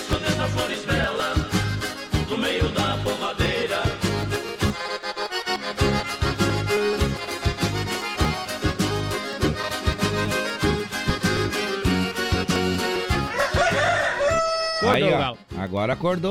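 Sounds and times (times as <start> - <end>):
upbeat music with steady percussion: 0.0 - 4.8, 5.4 - 14.0
rooster crowing: 13.1 - 15.0
speech: 15.3 - 16.2.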